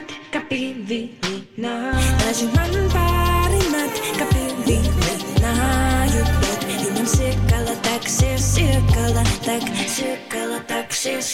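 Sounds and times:
new pop singer's debut single with punchy beat: 0.0s - 11.3s
speech: 0.5s - 11.3s
heavy bass notes: 2.0s - 9.5s
bright melodic line: 2.6s - 9.7s.

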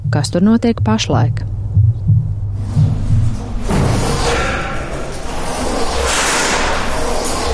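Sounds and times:
heartbeat thumps from a memorial sound installation in Latvia: 0.0s - 4.1s
speech: 0.1s - 1.6s
rumbling, hissing renovation noise from memorial restoration: 1.5s - 7.5s.

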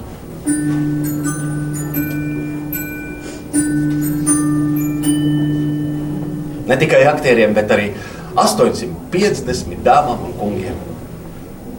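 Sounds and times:
theatre third-call electric bell ringing before a performance: 0.3s - 8.6s
speech: 0.5s - 1.4s, 6.7s - 10.9s.

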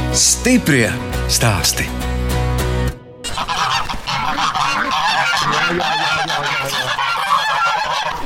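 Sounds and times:
speech: 0.2s - 2.0s
flock of goose-like farm birds honking and calling: 3.2s - 8.2s.

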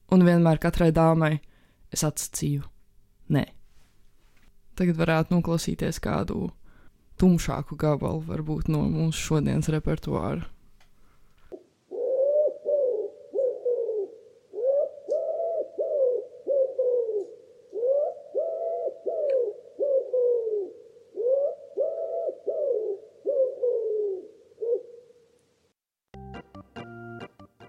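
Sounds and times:
speech: 0.1s - 2.7s, 3.3s - 3.6s, 4.8s - 6.6s, 7.2s - 10.5s
recorded bird song of low soft cooing phrases: 11.9s - 25.2s.

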